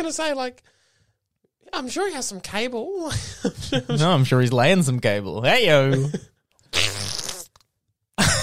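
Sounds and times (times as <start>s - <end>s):
speech: 0.0s - 0.8s, 1.6s - 6.9s
laughter: 3.1s - 4.3s, 5.8s - 6.3s
loud raspy fart held up to a phone during a phone call: 6.7s - 7.6s.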